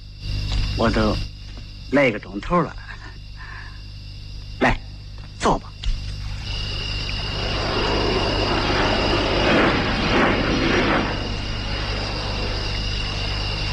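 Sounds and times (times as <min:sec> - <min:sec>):
airplane flying overhead at night: 0:00.0 - 0:13.7
speech: 0:00.8 - 0:01.3, 0:01.9 - 0:02.8.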